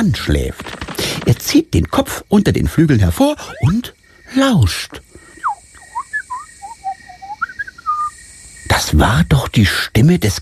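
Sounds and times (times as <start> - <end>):
speech: 0.0 - 5.1, 8.8 - 10.4
small bird chirping: 3.3 - 8.7.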